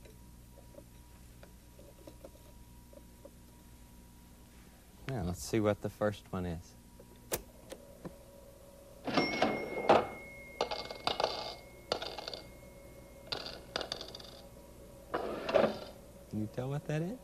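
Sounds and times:
speech: 0:05.4 - 0:06.8, 0:16.6 - 0:17.2
mechanical cash register key strikes and clacks at a music shop: 0:09.1 - 0:12.5
mechanical cash register bell ringing: 0:09.1 - 0:14.4, 0:15.2 - 0:16.0.

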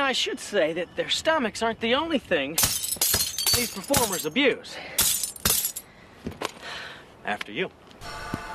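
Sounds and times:
speech: 0:00.1 - 0:05.2, 0:07.2 - 0:08.2
broken glass crunching under a performer's feet: 0:02.6 - 0:04.4, 0:05.0 - 0:05.8.

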